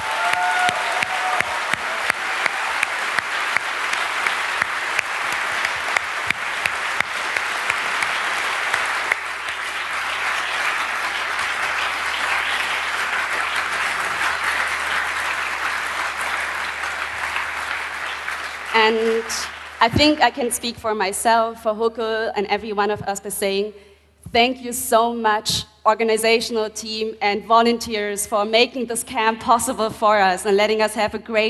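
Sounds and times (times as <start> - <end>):
crowd at a camp applauding: 0.0 - 20.7
speech: 18.9 - 31.4.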